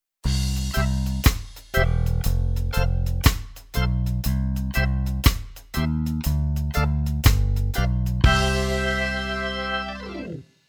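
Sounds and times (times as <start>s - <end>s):
reggae keyboard organ: 0.4s - 10.5s.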